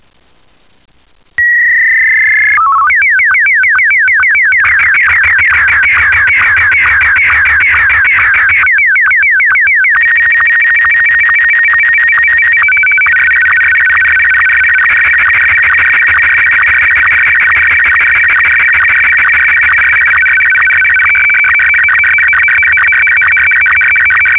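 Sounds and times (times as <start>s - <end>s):
SSTV image transmission signal in Martin 1 mode: 0.0s - 24.3s.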